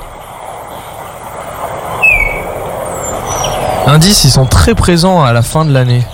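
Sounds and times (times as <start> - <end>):
European starling descending whistle: 1.9 - 3.8
speech: 3.9 - 6.1.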